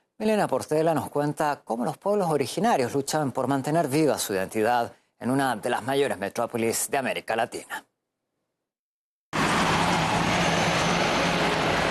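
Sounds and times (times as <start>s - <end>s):
speech: 0.2s - 7.9s
steady broadband roar of highway traffic: 9.4s - 11.8s.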